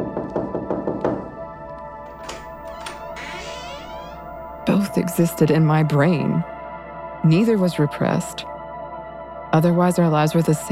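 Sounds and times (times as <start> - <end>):
firm knocking on a wooden door: 0.0 - 1.4
speech: 4.8 - 6.5, 7.2 - 8.5, 9.5 - 10.6.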